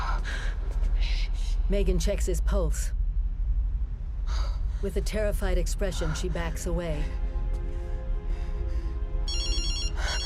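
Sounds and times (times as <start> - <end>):
steady low drone of music: 0.0 - 10.2
speech: 1.7 - 3.0, 4.8 - 7.2
phone ringing with a bright high electronic ringtone: 9.3 - 10.2.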